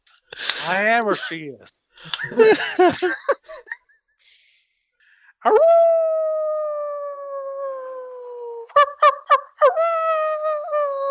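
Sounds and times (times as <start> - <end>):
speech: 0.3 - 3.7, 5.4 - 6.4
laughter: 0.4 - 3.8
person imitating a dog howl with yelping bursts: 5.5 - 11.0.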